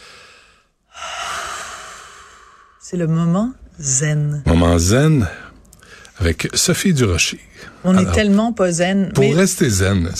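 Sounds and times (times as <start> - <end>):
slow breathing in a calming exercise: 0.0 - 2.9, 5.3 - 6.2
speech: 2.9 - 5.4, 6.2 - 10.1.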